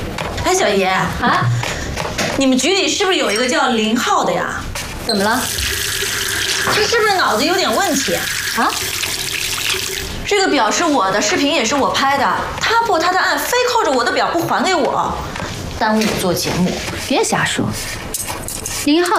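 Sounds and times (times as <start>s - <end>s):
people talking: 0.4s - 1.6s, 2.4s - 5.6s, 6.7s - 8.8s, 10.3s - 17.8s, 18.8s - 19.1s
water running from a tap: 5.2s - 10.2s
hands being washed under a running tap: 5.4s - 10.1s.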